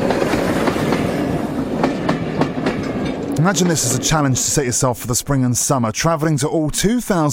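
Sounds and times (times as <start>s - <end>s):
train wheels clacking over rail joints: 0.0s - 4.6s
train rumbling on rails: 0.0s - 5.6s
speech: 3.4s - 7.3s.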